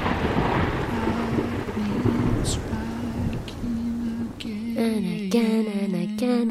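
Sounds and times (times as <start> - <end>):
lightning crackle: 0.0 - 5.0
thunder and lightning sound effect rumble: 0.0 - 5.1
speech: 2.4 - 2.7, 5.3 - 6.4.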